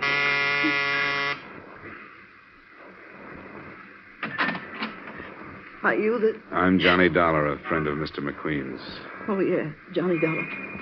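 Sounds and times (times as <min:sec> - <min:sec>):
electric door buzzer of a ground-floor apartment in a row house: 0:00.0 - 0:01.4
speech: 0:00.6 - 0:00.8, 0:05.8 - 0:10.8.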